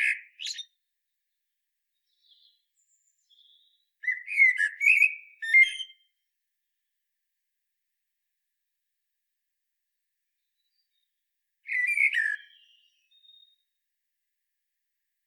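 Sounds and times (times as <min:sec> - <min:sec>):
common blackbird Turdus merula singing: 0:00.0 - 0:00.8, 0:02.0 - 0:06.0, 0:11.7 - 0:13.6.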